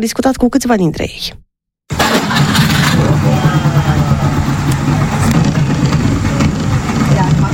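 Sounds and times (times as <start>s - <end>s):
speech: 0.0s - 1.4s
Trabant 601 small two-stroke car engine starting and running: 1.9s - 7.5s.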